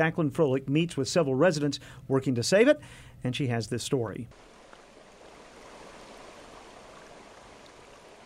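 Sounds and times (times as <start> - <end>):
speech: 0.0 - 4.6
water rushing out of a dam spillway: 4.3 - 8.2.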